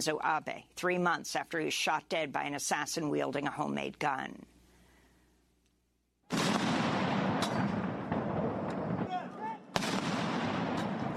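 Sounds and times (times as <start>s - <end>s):
speech: 0.0s - 4.5s
ceremonial cannon shots of a gun salute: 6.3s - 11.1s
rolling outdoor echo of cannon shots: 6.3s - 11.1s.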